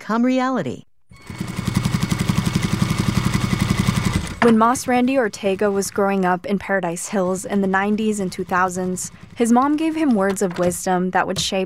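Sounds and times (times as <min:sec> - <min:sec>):
speech: 0:00.1 - 0:00.9, 0:04.4 - 0:11.6
sewing machines running in a clothing workshop: 0:01.2 - 0:06.3, 0:07.1 - 0:10.7.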